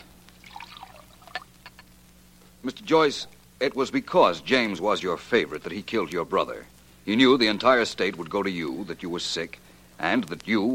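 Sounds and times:
water poured from a pitcher into a glass: 0:00.4 - 0:01.5
speech: 0:02.6 - 0:10.7.

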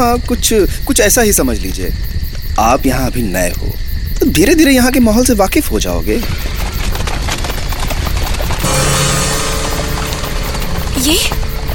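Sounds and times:
speech: 0:00.0 - 0:06.9, 0:11.1 - 0:11.4
many horses' hooves clip-clopping: 0:06.2 - 0:11.7.

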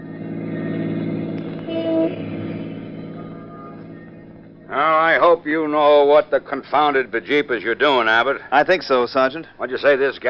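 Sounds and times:
car engine rumble: 0:00.0 - 0:09.6
road hum: 0:00.0 - 0:10.2
car horn toot: 0:01.4 - 0:04.1
speech: 0:04.8 - 0:10.2.

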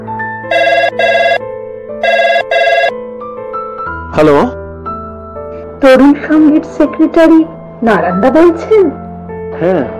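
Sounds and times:
telephone ringing while calling a number from a mobile: 0:00.5 - 0:01.4, 0:02.0 - 0:03.0
speech: 0:04.2 - 0:04.6, 0:05.8 - 0:09.0, 0:09.6 - 0:09.9.

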